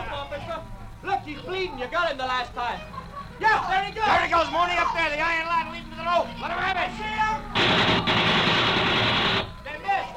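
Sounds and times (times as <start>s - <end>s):
speech: 1.5s - 8.5s
rapid gunfire aimed at a man on a roof: 7.6s - 9.6s.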